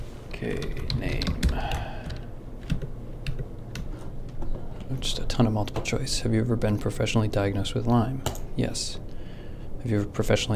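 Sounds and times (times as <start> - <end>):
low hum: 0.0 - 10.5
speech: 0.4 - 2.0, 4.9 - 9.0, 9.8 - 10.5
typing on a computer keyboard in a testing room: 0.6 - 3.9.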